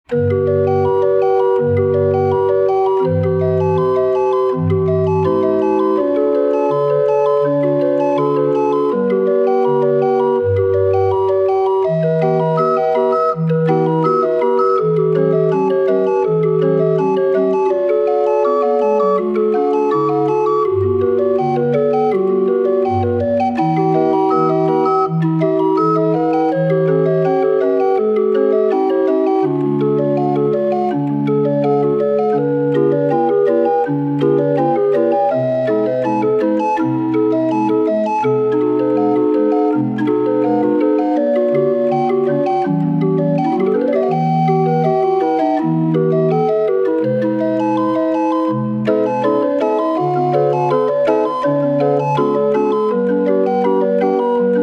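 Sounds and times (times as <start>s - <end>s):
36er barrel organ playing: 0.0s - 54.6s.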